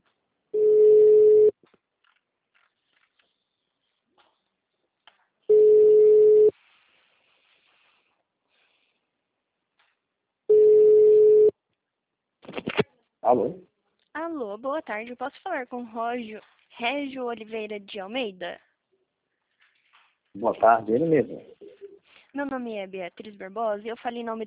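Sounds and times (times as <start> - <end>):
telephone ringback tone on an outgoing call: 0.6 - 1.5, 5.5 - 6.5, 10.5 - 11.5
speech: 13.3 - 13.7, 14.3 - 18.7, 20.4 - 21.7, 22.3 - 24.4.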